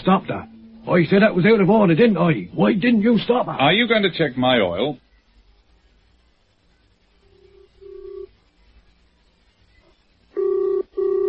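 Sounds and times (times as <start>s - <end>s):
speech: 0.0s - 5.0s
telephone ringing in double-burst pattern: 7.3s - 8.3s, 10.3s - 11.2s.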